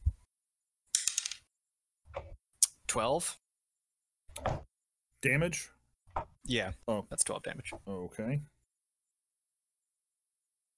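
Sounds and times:
dice tumbling across a hard tabletop during tabletop role-playing game attack rolls: 0:01.0 - 0:01.5
speech: 0:02.9 - 0:03.4, 0:05.2 - 0:05.8, 0:06.4 - 0:08.5.

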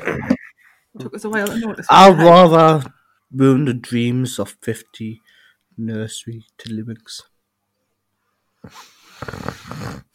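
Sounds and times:
speech: 0:01.0 - 0:07.3, 0:08.6 - 0:10.1
person snoring: 0:08.6 - 0:10.1.

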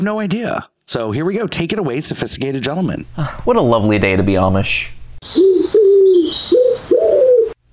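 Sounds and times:
speech: 0:00.0 - 0:06.3
pigeon cooing: 0:05.2 - 0:07.6.

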